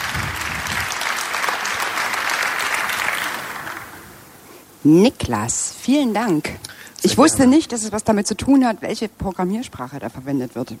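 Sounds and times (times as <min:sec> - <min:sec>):
audience applauding at the end of a presentation: 0:00.0 - 0:04.2
speech: 0:04.8 - 0:10.7.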